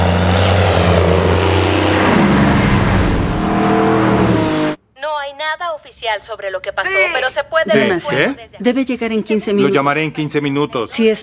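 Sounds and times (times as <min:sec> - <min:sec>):
propeller airplane engine roaring overhead: 0:00.0 - 0:04.8
speech: 0:06.1 - 0:11.2.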